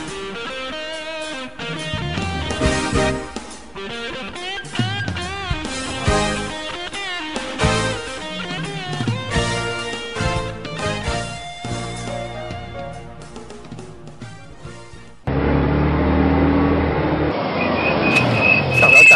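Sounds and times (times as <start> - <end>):
upbeat music: 1.7 - 15.2
loud vehicle noise: 1.8 - 12.1, 14.6 - 19.1
sharp high-pitched squeal of vehicle brakes stopping suddenly: 7.4 - 11.5, 15.3 - 19.1.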